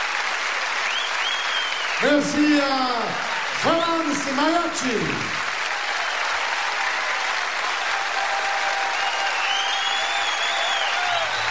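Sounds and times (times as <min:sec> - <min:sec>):
audience applause from a sizable crowd: 0:00.0 - 0:11.4
faint whistles: 0:00.8 - 0:02.0, 0:08.8 - 0:11.4
speech: 0:02.0 - 0:05.4.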